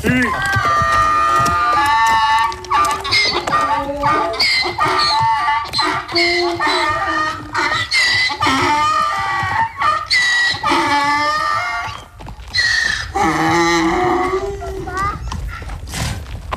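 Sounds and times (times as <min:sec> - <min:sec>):
donkeys braying hoarsely: 0:00.0 - 0:16.5.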